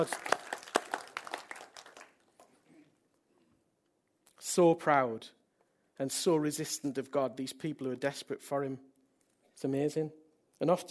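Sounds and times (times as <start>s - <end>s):
speech: 0.0s - 0.3s, 4.6s - 5.4s, 6.0s - 8.9s, 9.6s - 10.8s
audience applause: 0.0s - 2.5s.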